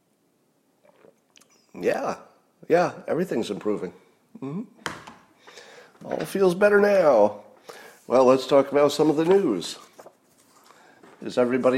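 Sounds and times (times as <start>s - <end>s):
gulp: 0.8s - 1.8s
person sipping coffee: 0.8s - 1.8s
speech: 1.8s - 4.8s, 6.0s - 7.4s, 8.1s - 9.9s, 11.2s - 11.7s.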